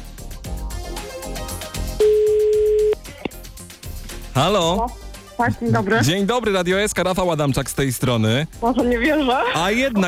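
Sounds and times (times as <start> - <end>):
busy music: 0.0 - 10.0
telephone ringback tone while calling: 2.0 - 3.0
speech: 4.4 - 10.0.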